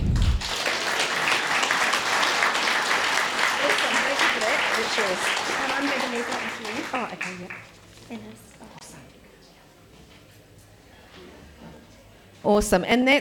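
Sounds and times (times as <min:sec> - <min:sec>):
audience clapping: 0:00.0 - 0:08.5
speech: 0:05.1 - 0:05.4, 0:06.2 - 0:08.7, 0:12.4 - 0:13.2.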